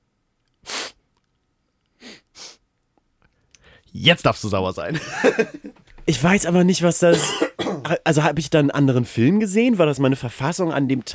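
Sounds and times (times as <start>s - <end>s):
person sniffling: 0.6s - 1.0s, 2.0s - 2.6s
speech: 3.9s - 11.1s
laughter: 4.9s - 5.7s.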